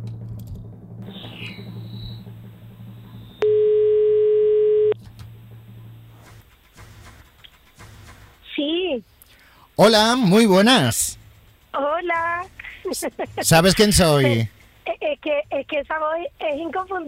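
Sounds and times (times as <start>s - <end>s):
low hum: 0.0s - 17.0s
telephone ringing tone: 3.4s - 5.0s
speech: 9.8s - 11.2s, 13.0s - 14.6s, 15.2s - 17.0s.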